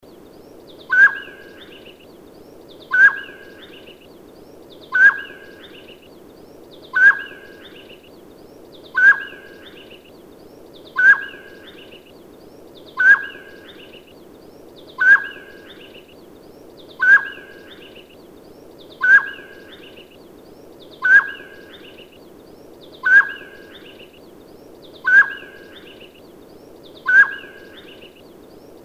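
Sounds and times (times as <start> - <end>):
mountain quail calling: 0.9 - 1.4, 2.9 - 3.5, 4.9 - 5.4, 7.0 - 7.4, 8.9 - 9.6, 11.0 - 11.5, 13.0 - 13.5, 15.0 - 15.6, 17.0 - 17.6, 19.0 - 19.6, 21.0 - 21.6, 23.0 - 23.7, 25.0 - 25.7, 27.0 - 27.7.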